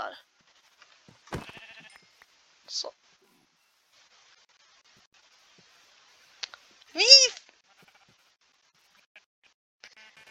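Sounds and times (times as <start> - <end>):
loud nasal sheep bleat in a video game: 1.4 - 2.1, 7.6 - 8.2, 9.1 - 10.2
speech: 2.7 - 3.0
faint soft clicks: 6.4 - 7.6.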